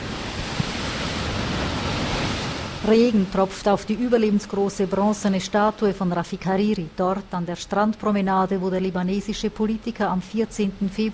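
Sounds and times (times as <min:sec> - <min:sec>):
sea surf foaming along a seafront promenade: 0:00.0 - 0:06.5
speech: 0:02.9 - 0:11.1.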